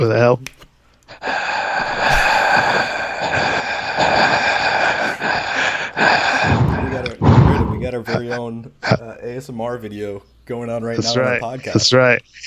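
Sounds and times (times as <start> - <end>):
speech: 0.0 - 1.4, 8.0 - 12.4
heavy breathing into a microphone: 1.1 - 7.9.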